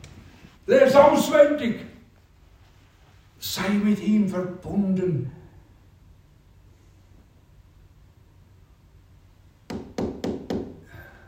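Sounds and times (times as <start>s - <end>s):
speech: 0.7s - 1.9s, 3.6s - 5.4s
firm knocking on a wooden door: 9.7s - 10.8s.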